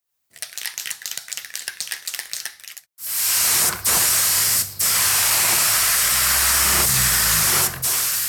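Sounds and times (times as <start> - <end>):
spray paint can rattling as it is shaken: 0.3 - 8.2
spray paint can hissing at a graffiti workshop: 3.0 - 8.2.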